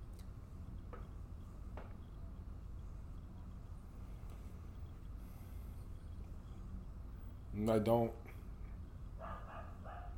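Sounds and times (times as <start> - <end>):
low rumble: 0.0 - 10.1
speech: 7.6 - 8.2
dog barking outside: 9.2 - 10.1.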